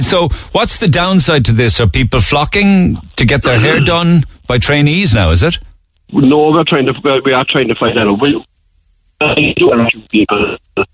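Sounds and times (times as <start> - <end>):
speech: 0.0 - 8.5, 9.2 - 10.9
voice over a poor distorted telephone line: 2.9 - 4.2, 5.2 - 8.5, 9.2 - 10.9.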